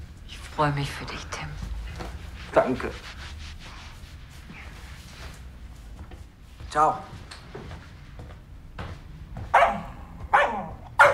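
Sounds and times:
speech: 0.6s - 1.6s, 2.6s - 3.2s, 6.7s - 7.2s
dog barking sharply: 9.5s - 11.1s.

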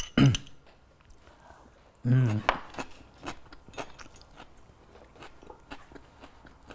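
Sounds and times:
light clinks of cutlery: 0.0s - 0.7s
person talking: 2.0s - 2.5s
chewing and biting while tasting radish salad and smoked trout croquettes: 2.3s - 6.7s.

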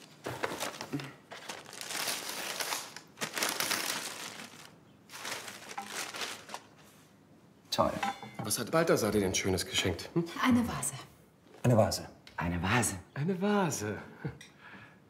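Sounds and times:
wrapping paper crinkling and tearing on a birthday present: 0.0s - 7.0s
speech: 7.8s - 14.4s.

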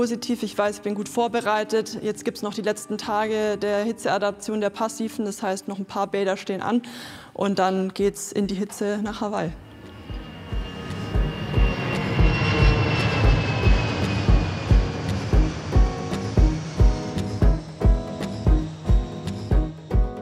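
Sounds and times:
speech: 0.0s - 9.7s
airplane jet engine at an airport winding down: 9.6s - 20.0s.

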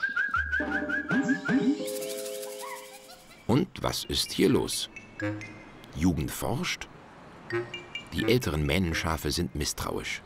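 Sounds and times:
person whistling to eggs about to hatch: 0.0s - 1.9s
speech: 3.5s - 6.9s, 7.5s - 10.2s.

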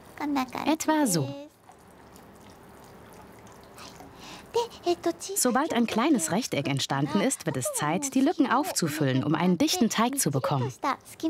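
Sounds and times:
speech: 0.2s - 1.4s, 4.8s - 11.2s
warm liquid wax at 60 degrees poured into water to make fake tempura shrimp: 1.5s - 11.2s.

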